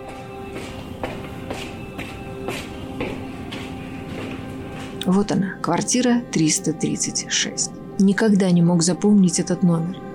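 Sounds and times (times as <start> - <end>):
footsteps climbing stairs in an apartment building: 0.0 - 5.3
continuous hum: 0.0 - 10.1
speech: 5.1 - 10.1.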